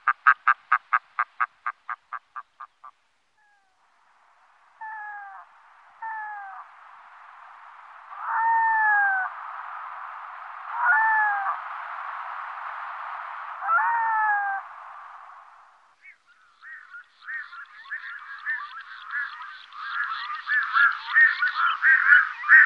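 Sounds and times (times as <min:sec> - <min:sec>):
steady hiss: 0:00.0 - 0:22.6
red-throated loon wailing calls: 0:04.8 - 0:06.7, 0:08.2 - 0:09.3, 0:10.7 - 0:11.6, 0:13.6 - 0:14.7, 0:16.0 - 0:22.6.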